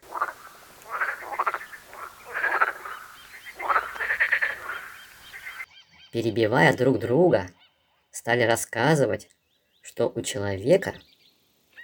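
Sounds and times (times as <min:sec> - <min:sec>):
frogs croaking: 0:00.0 - 0:06.3
speech: 0:06.2 - 0:07.6, 0:08.2 - 0:11.1.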